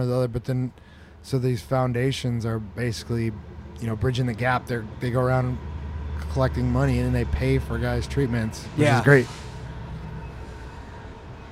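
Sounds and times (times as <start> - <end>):
speech: 0.0 - 9.4
train rumbling past: 2.5 - 11.5.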